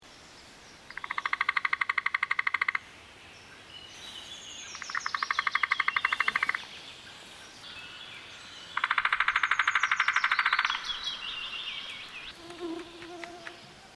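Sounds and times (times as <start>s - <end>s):
white-backed woodpecker Picoides leucotos: 0.9s - 2.8s, 4.7s - 6.7s, 8.8s - 13.8s.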